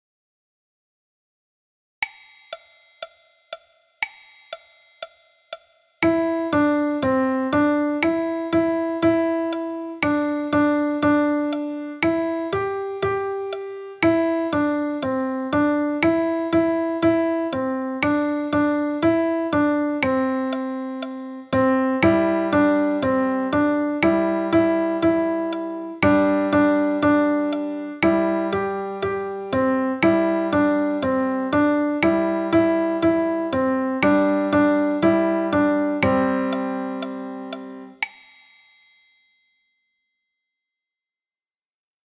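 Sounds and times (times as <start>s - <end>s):
piano music: 6.0s - 38.0s.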